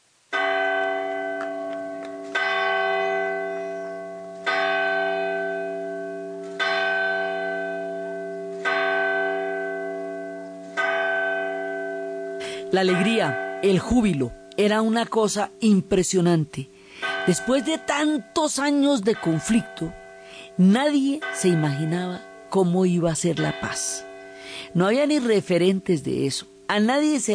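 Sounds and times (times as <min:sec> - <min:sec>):
church bell in Colombia tolling in celebration of the signing of peace: 0:00.3 - 0:27.3
speech: 0:12.7 - 0:20.0, 0:20.6 - 0:27.3.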